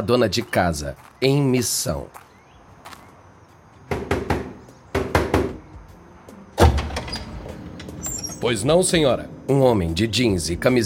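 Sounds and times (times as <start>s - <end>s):
speech: 0.0s - 2.2s, 8.4s - 10.8s
woman knocking on the steel door of a DVD warehouse: 3.9s - 5.6s.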